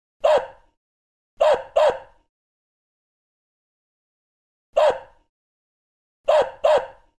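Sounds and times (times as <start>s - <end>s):
dog: 0.2s - 0.8s, 1.4s - 2.3s, 4.8s - 5.3s, 6.2s - 7.1s.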